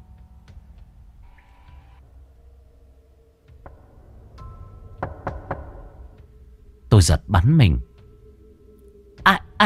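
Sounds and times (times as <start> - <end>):
dry knocking on a door: 3.5 - 6.3
speech: 7.0 - 7.9, 9.3 - 9.6.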